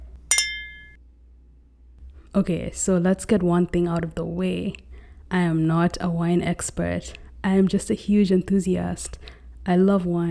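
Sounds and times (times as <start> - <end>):
bright ringing tone of wine glass: 0.3 - 1.0
wine glasses clinking in a toast with Merlot: 0.3 - 1.0
speech: 2.3 - 10.3.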